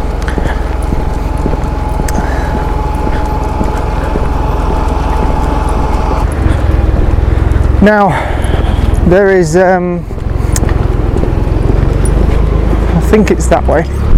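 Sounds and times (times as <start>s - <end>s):
loud tractor engine passing by: 0.0s - 14.1s
speech: 7.8s - 8.3s, 9.1s - 10.1s, 13.1s - 14.0s.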